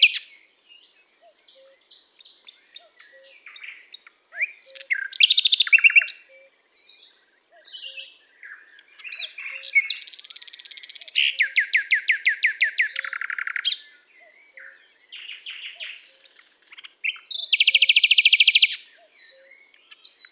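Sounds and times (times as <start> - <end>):
common nightingale Luscinia megarhynchos song with whistles and harsh chatter: 0.0 - 20.3.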